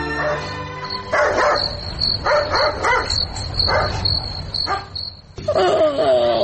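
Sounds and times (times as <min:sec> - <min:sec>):
dog barking at midnight outside a house: 0:00.1 - 0:05.0
crickets chirring: 0:00.4 - 0:06.3.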